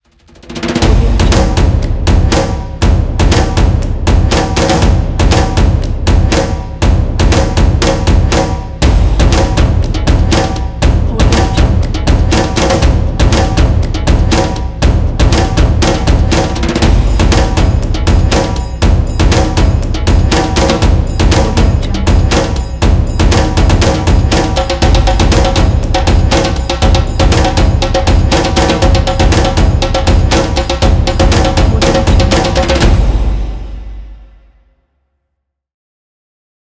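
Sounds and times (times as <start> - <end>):
tribal percussion intro: 0.2 - 34.6.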